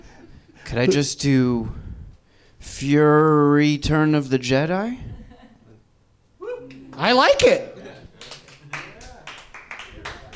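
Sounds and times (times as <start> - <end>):
speech: 0.7 - 1.8, 2.6 - 5.1, 7.0 - 7.7
small group light polite golf clapping: 6.6 - 10.3.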